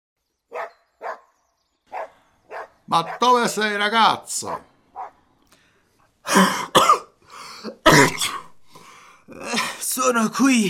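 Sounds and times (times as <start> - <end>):
miller's dog barking: 0.5 - 1.3, 1.9 - 3.3, 4.5 - 5.2
speech: 2.9 - 4.7, 6.4 - 6.7, 10.0 - 10.6.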